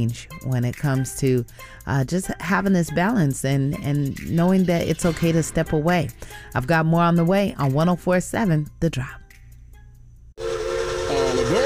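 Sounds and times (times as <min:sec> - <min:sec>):
speech: 0:00.0 - 0:09.2
rumbling breathy background: 0:02.3 - 0:09.3
steam train whistle blowing: 0:10.4 - 0:11.6.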